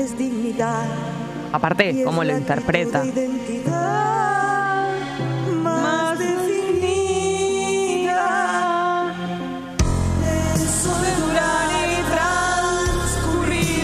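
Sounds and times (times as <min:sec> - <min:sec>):
speech: 0:00.0 - 0:04.4
1980s-style song recording with echo: 0:00.0 - 0:13.8
bass: 0:09.8 - 0:13.8.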